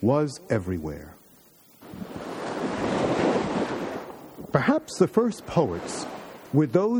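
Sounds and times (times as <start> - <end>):
speech: 0.0 - 1.2, 4.5 - 6.9
wind noise: 1.8 - 4.6
sea waves breaking on the shore: 1.8 - 6.7.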